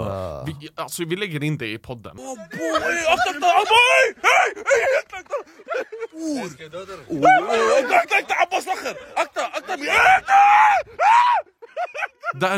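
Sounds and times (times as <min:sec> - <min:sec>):
speech: 0:00.0 - 0:12.5
person screaming in fright at a large snake: 0:02.2 - 0:05.3, 0:09.6 - 0:11.6
excited voices: 0:02.2 - 0:12.5
laughter: 0:02.2 - 0:12.5.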